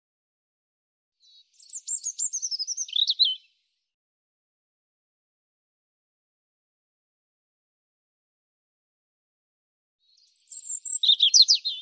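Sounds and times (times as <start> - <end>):
European robin song: 1.2 - 3.6, 10.0 - 11.7.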